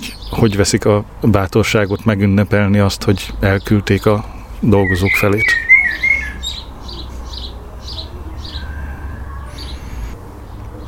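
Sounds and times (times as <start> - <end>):
speech: 0.3 - 5.6
outdoor birdsong of short chirps: 4.8 - 10.8
higher bird whistle: 4.9 - 6.6, 8.4 - 10.1.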